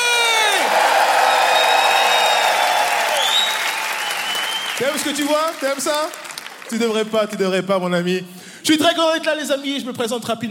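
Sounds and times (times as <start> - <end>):
comedy-show audience cheering and whooping: 0.0 - 5.6
large comedy-show audience applauding: 0.2 - 7.4
speech: 4.8 - 10.4.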